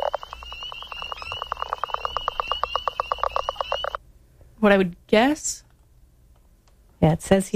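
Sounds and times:
frog calling: 0.0 - 4.0
speech: 4.6 - 5.6, 7.0 - 7.5.

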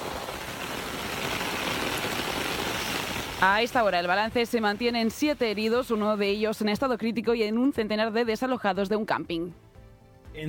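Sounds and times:
heavy rain: 0.0 - 6.2
speech: 3.4 - 9.6.

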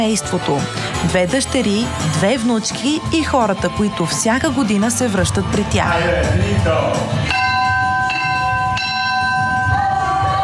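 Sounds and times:
speech: 0.0 - 7.4
church bell ringing: 7.3 - 9.8.

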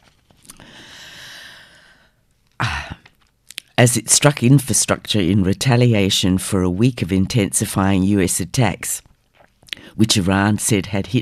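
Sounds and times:
long drawn breath in: 0.6 - 2.2
speech: 3.8 - 9.1, 10.0 - 11.2.

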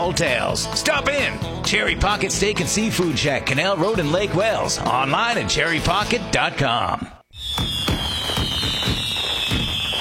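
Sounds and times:
speech: 0.0 - 7.7
4th of July fireworks bursts with sharp booms: 7.4 - 9.9.

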